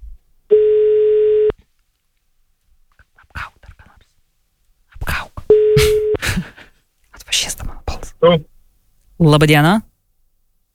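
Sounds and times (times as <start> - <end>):
telephone line tone while a call is being placed: 0.5 - 1.6, 5.5 - 6.2
speech: 8.2 - 8.5, 9.2 - 9.9.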